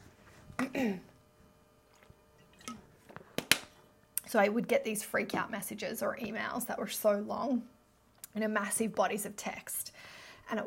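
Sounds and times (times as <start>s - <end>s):
speech: 0.8s - 1.1s, 4.3s - 7.8s, 8.4s - 9.9s, 10.5s - 10.6s
person sipping water with soft wet slurps: 1.8s - 2.9s.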